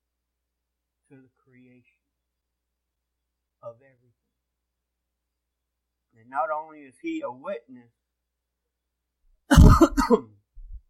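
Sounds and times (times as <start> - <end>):
speech: 1.1 - 2.1, 3.6 - 4.3, 6.2 - 8.0, 9.6 - 10.4
low grunt: 9.5 - 10.1
person speaking to an audience clearing throat: 9.5 - 10.8
person speaking to an audience coughing: 9.5 - 10.8.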